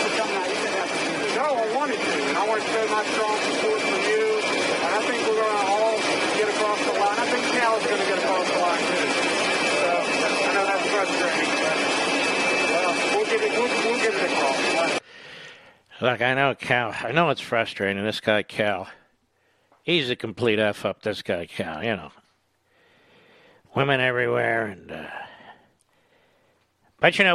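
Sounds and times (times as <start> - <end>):
airplane engine roar with a high whine: 0.0 - 15.0
speech: 1.9 - 5.8, 6.6 - 9.2, 10.6 - 12.1, 13.3 - 15.0, 16.0 - 19.0, 19.8 - 22.2, 23.7 - 25.3, 27.0 - 27.3.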